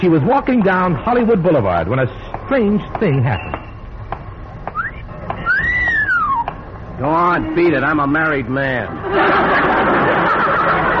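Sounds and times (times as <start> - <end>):
speech: 0.0 - 3.6, 7.0 - 10.0
person whistling for a dog: 4.7 - 6.5
laughter: 8.8 - 10.9.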